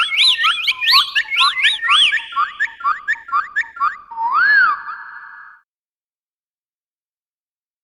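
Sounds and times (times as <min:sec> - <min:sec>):
bird whistling bouncy notes in Australia: 0:00.0 - 0:05.6.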